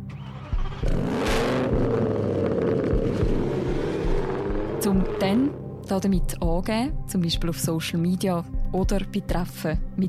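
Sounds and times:
tuned car exhaust roaring as the engine revs hard: 0:00.1 - 0:05.8
speech: 0:04.8 - 0:10.0.

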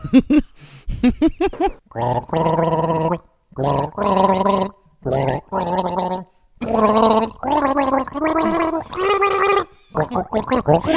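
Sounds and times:
short breaths: 0:00.6 - 0:01.0
person gargling a TV theme melody: 0:02.0 - 0:10.9.

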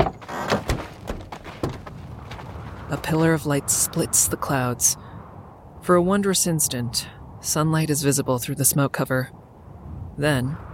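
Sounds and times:
truck cab doors opening with thumps and clunks: 0:00.0 - 0:02.0
speech: 0:02.9 - 0:05.0, 0:05.8 - 0:09.4, 0:10.2 - 0:10.6.

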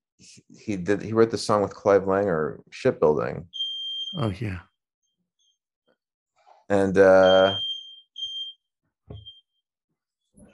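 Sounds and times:
speech: 0:00.2 - 0:04.7, 0:06.7 - 0:07.7
alarm going off with high-pitched electronic beeps: 0:03.5 - 0:04.3, 0:07.0 - 0:08.6.

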